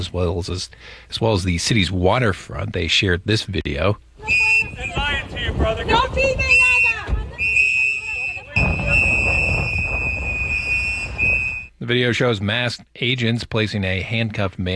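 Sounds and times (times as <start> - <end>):
speech: 0.0 - 4.8, 5.6 - 6.6, 11.9 - 14.7
shrill whistles blowing: 4.2 - 5.2, 6.4 - 11.8
several people shouting over one another: 5.9 - 9.0.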